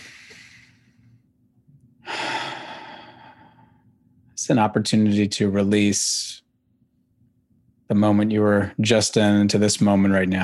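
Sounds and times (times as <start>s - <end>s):
person taking deep breaths during a guided mindfulness breathing exercise: 0.0s - 1.0s, 2.0s - 3.9s
speech: 4.4s - 6.4s, 7.9s - 10.4s.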